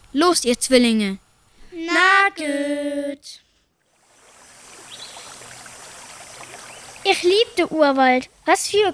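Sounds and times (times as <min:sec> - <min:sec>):
speech: 0:00.1 - 0:01.2, 0:02.0 - 0:03.4, 0:07.1 - 0:08.9
flowing river water: 0:03.8 - 0:08.6.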